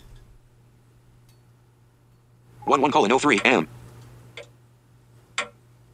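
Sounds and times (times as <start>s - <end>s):
faint steady electrical hum: 0.0s - 5.9s
speech: 2.6s - 3.8s
clock app ticking on an iPhone 6S: 3.3s - 3.6s, 5.4s - 5.6s.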